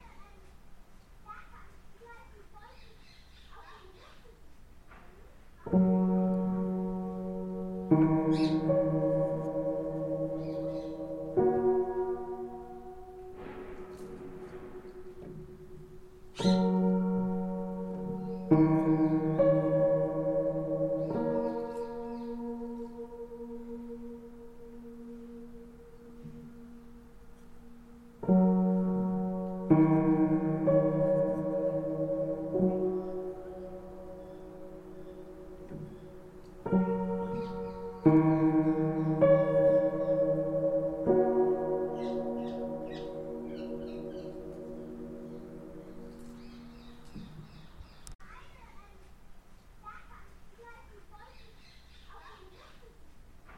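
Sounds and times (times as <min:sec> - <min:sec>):
child playing piano: 0:05.6 - 0:48.1.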